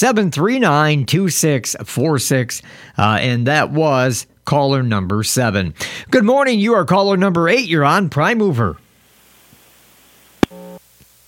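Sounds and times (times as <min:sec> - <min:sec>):
speech: 0:00.0 - 0:08.8
telephone busy tone after a dropped call: 0:10.4 - 0:10.8.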